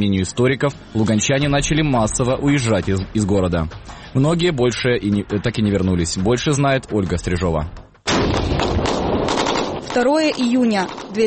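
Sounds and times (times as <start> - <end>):
speech: 0.0 - 8.5, 10.0 - 11.2
booming shelling explosions in the city of Luhansk: 8.0 - 11.2
rapid overlapping gunfire bursts in the city of Luhansk: 8.1 - 11.2.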